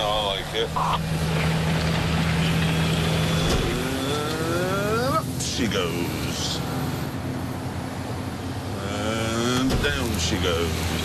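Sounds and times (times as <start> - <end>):
tractor engine running while cultivating: 0.0 - 11.0
speech: 0.6 - 1.5, 5.6 - 6.7, 9.8 - 11.0.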